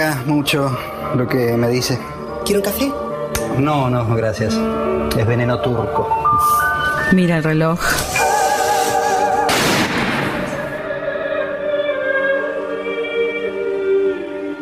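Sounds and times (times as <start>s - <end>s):
sustained music with ringing tones: 0.0s - 14.6s
speech: 0.1s - 8.2s
gunshot inside a house: 9.5s - 10.7s.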